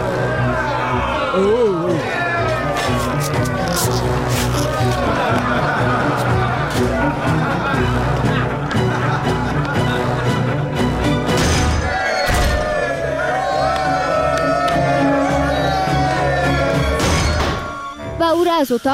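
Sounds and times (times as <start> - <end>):
many voices shouting and yelling in a crowd brawl: 0.0 - 7.3, 11.7 - 18.0
speech: 1.4 - 2.2, 18.6 - 18.9
laughter: 2.6 - 10.8.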